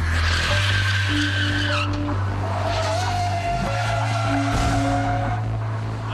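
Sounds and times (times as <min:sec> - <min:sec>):
steady roar of car engines: 0:00.0 - 0:06.1
tires screeching and skidding in a pileup: 0:00.0 - 0:06.1.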